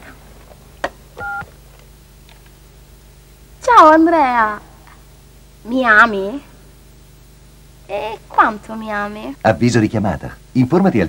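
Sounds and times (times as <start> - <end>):
low hum: 0.0 - 11.0
telephone keypad tone: 1.2 - 1.5
speech: 3.8 - 4.7, 5.6 - 6.5, 7.9 - 11.0.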